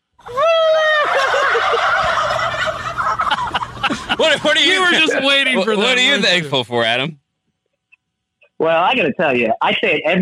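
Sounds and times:
laughter: 0.3s - 7.1s
turkeys gobbling and squawking: 1.5s - 4.2s
speech: 4.4s - 7.2s, 8.6s - 10.2s.

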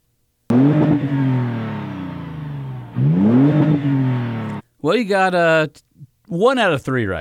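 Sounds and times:
Toyota car engine revving, not a four-cylinder: 0.5s - 4.6s
speech: 4.9s - 7.1s.

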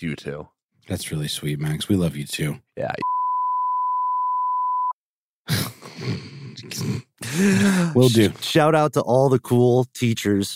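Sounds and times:
speech: 0.0s - 3.2s, 5.5s - 10.5s
censor bleep tone: 3.0s - 5.0s
loud rough vocal noise: 5.5s - 8.6s.

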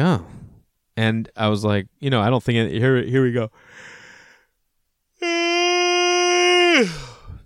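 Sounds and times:
speech: 1.0s - 4.0s, 6.8s - 7.0s
person yawning loudly: 5.2s - 7.4s.

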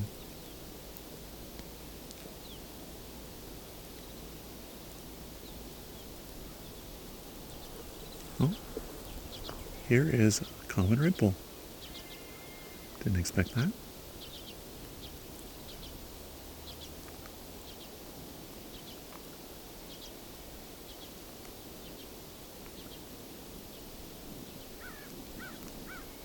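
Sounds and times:
steady hiss of open-air noise: 0.0s - 26.2s
flock of crows cawing in a field in farmland: 7.5s - 10.7s, 24.8s - 26.2s
speech: 8.4s - 8.7s, 9.9s - 11.5s, 13.0s - 13.9s.

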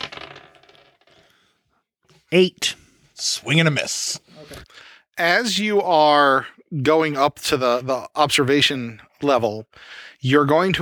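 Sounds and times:
dice clattering across a hard surface: 0.0s - 1.3s
speech: 2.3s - 10.7s.

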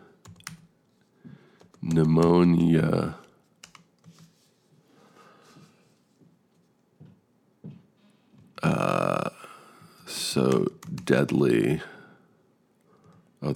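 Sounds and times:
typing on a computer keyboard: 0.2s - 0.7s, 1.6s - 2.3s, 3.2s - 4.3s, 10.4s - 11.4s
speech: 1.8s - 3.2s, 10.5s - 12.0s.

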